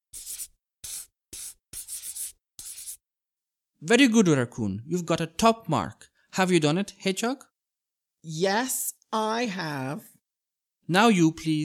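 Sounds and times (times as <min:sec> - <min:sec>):
pencil coloring and circling on paper: 0:00.0 - 0:03.1
speech: 0:03.8 - 0:07.5, 0:08.2 - 0:10.1, 0:10.9 - 0:11.6.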